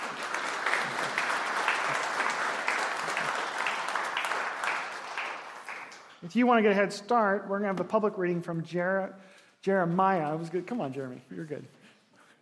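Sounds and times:
congregation clapping: 0.0s - 6.2s
speech: 6.3s - 11.8s.

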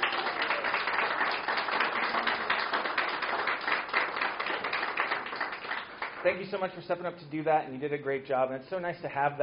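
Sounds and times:
audience applause for a performer: 0.0s - 6.4s
speech: 6.2s - 9.4s.

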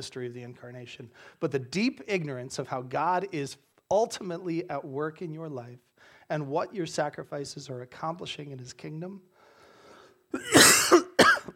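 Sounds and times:
speech: 0.0s - 9.3s, 10.3s - 11.0s
person coughing harshly: 10.3s - 11.5s.

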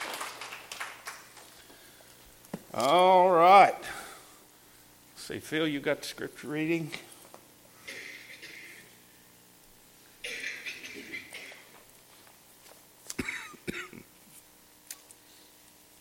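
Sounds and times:
speech: 2.8s - 3.8s, 5.3s - 7.1s
person clearing throat: 7.8s - 9.0s, 10.2s - 11.8s, 13.1s - 14.1s
person coughing with raspy hacks: 7.8s - 9.0s, 10.2s - 11.8s, 13.1s - 14.1s.

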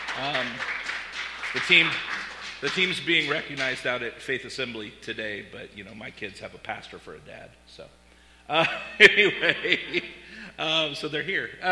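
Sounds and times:
audience clapping: 0.0s - 4.0s
speech: 0.2s - 0.8s, 1.5s - 11.7s
laughter: 8.5s - 10.3s.

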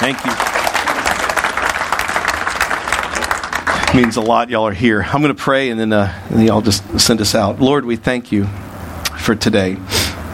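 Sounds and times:
speech: 0.0s - 0.5s, 3.9s - 8.6s, 9.2s - 10.0s
audience applause: 0.0s - 4.5s.

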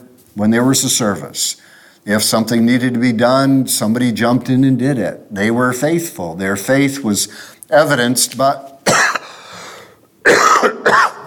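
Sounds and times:
speech: 0.4s - 9.0s
loud harsh coughs: 8.8s - 9.6s, 10.2s - 11.2s.

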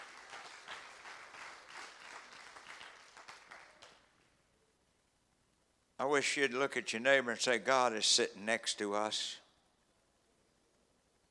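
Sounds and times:
audience clapping hands: 0.0s - 4.3s
speech: 6.0s - 9.4s.

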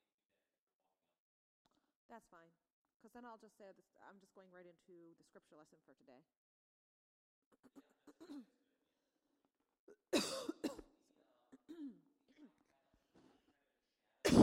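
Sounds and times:
speech: 2.1s - 6.4s, 7.6s - 8.6s
sharp coughs: 7.6s - 8.5s, 9.9s - 10.9s, 11.6s - 12.0s.

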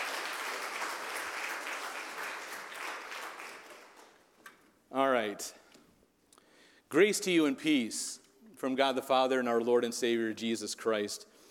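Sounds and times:
applause from a large congregation: 0.0s - 4.2s
speech: 5.2s - 5.6s, 6.9s - 11.3s.

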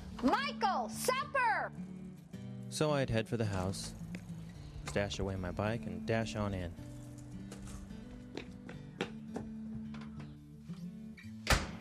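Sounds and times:
soft music: 0.0s - 11.7s
speech: 0.2s - 2.0s, 2.7s - 4.1s, 4.9s - 6.9s
door slamming shut: 11.4s - 11.7s.

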